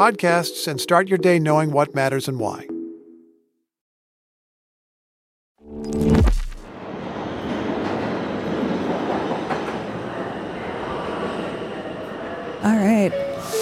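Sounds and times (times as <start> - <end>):
speech: 0.0 - 2.7, 12.6 - 13.3
subway train rumbling through a subway station: 6.7 - 13.5.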